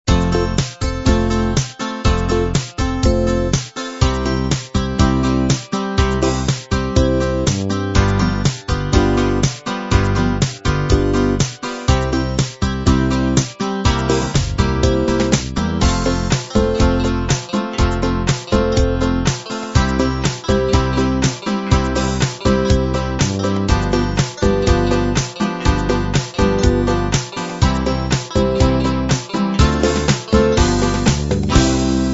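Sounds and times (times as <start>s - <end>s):
pop beat: 0.1s - 32.0s.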